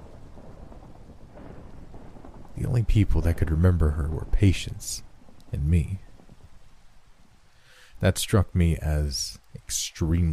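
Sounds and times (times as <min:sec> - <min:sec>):
deep continuous rumble of thunder: 0:00.0 - 0:06.7
steady heavy rain pouring down: 0:00.0 - 0:10.3
speech: 0:02.6 - 0:06.1, 0:08.0 - 0:10.3.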